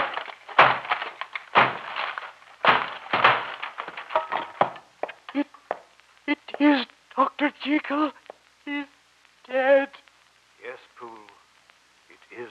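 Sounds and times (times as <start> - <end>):
door being battered down with heavy thuds and splintering cracks: 0.0 - 4.9
speech: 6.6 - 8.9.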